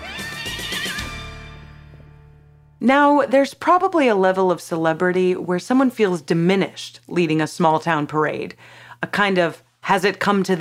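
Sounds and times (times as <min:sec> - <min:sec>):
horse whinnying: 0:00.0 - 0:01.4
speech: 0:02.8 - 0:10.5.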